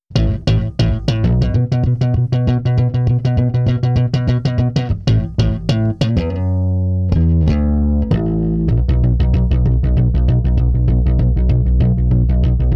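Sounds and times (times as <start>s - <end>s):
aboriginal bass guitar in C: 0.0s - 12.7s.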